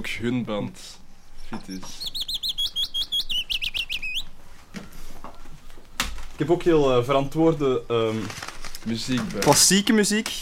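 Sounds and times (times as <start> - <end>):
speech: 0.0 - 2.2, 6.4 - 10.4
willow warbler singing on the radio: 0.0 - 4.4.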